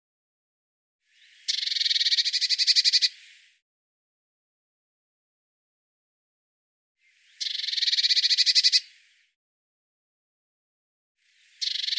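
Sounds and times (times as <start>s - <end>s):
Eurasian blue tit harsh churring rattles: 1.4s - 3.2s, 7.4s - 8.8s, 11.6s - 11.9s.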